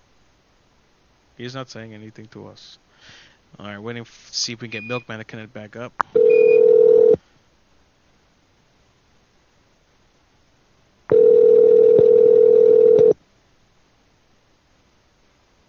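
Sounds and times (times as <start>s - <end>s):
speech: 1.4s - 6.2s
telephone beep: 4.8s - 5.1s, 6.2s - 7.2s, 11.1s - 13.2s.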